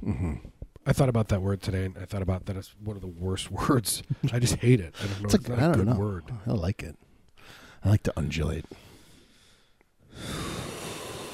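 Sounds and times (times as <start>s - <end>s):
speech: 0.9s - 8.8s
nasal breath with gurgling mucus: 10.1s - 11.3s.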